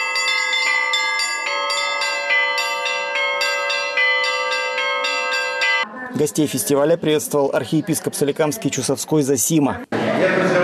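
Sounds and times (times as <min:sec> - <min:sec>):
Easter church bells pealing: 0:00.0 - 0:05.9
speech: 0:06.2 - 0:10.5.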